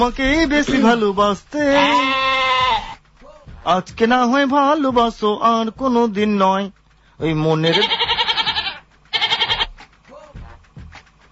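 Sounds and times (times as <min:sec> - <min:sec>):
speech: 0:00.0 - 0:02.1, 0:03.6 - 0:08.0
goat bleating: 0:00.6 - 0:03.0, 0:07.6 - 0:09.8.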